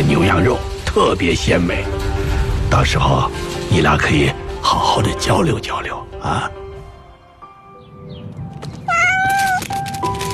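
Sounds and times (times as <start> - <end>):
speech: 0.2 - 2.1, 2.7 - 6.6
cat meowing: 8.8 - 9.8.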